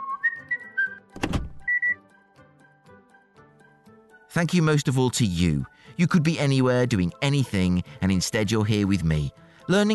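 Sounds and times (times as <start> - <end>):
person whistling a short bright tune: 0.0 - 2.1
speech: 4.4 - 9.9.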